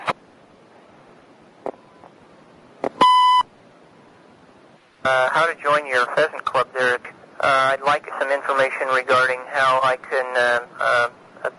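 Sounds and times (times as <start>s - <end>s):
answering machine beep: 3.0s - 3.5s
speech: 5.0s - 7.0s, 7.6s - 11.2s.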